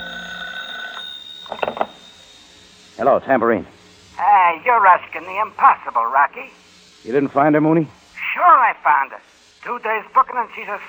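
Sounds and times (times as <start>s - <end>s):
old telephone bell ringing: 0.0s - 2.6s
speech: 3.0s - 10.8s.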